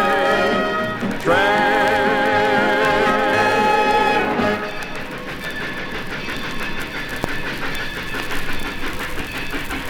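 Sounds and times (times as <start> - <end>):
long wavering train whistle blast: 0.0 - 5.1
train wheels clattering on tracks: 0.0 - 9.8.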